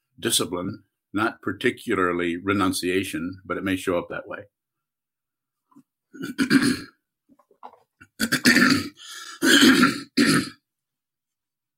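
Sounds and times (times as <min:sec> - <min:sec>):
speech: 0:00.2 - 0:04.6, 0:06.2 - 0:06.9, 0:08.2 - 0:10.6
person clearing throat: 0:06.2 - 0:07.0, 0:08.1 - 0:10.6.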